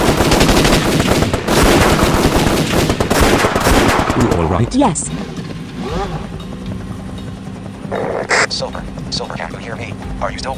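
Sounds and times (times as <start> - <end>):
rapid automatic gunfire as people shoot their way out of a trap: 0.0 - 4.6
speech: 4.5 - 5.4, 8.6 - 10.5.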